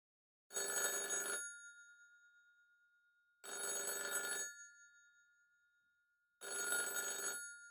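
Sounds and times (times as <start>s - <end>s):
old-style telephone bell ringing: 0.5s - 2.0s, 3.4s - 5.2s, 6.4s - 7.7s.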